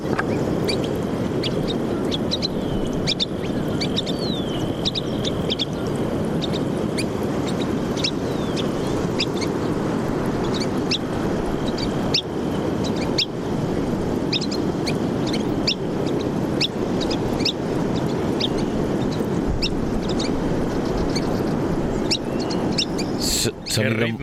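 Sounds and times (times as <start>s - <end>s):
sea waves along a coast: 0.0s - 24.2s
wind along a coast: 0.0s - 24.2s.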